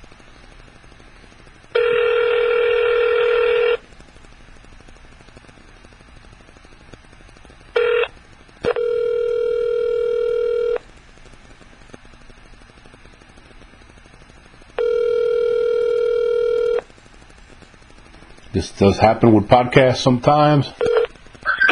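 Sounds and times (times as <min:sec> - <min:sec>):
buzzy electronic telephone line tone: 0:01.8 - 0:03.8, 0:07.8 - 0:10.8, 0:14.8 - 0:16.9, 0:20.8 - 0:21.1
speech: 0:18.6 - 0:20.9.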